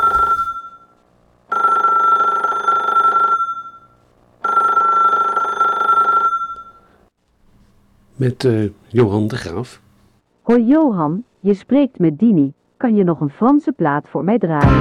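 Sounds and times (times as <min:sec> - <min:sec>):
telephone ringing in a radio studio: 0:00.0 - 0:07.0
speech: 0:08.2 - 0:09.8, 0:10.5 - 0:14.7.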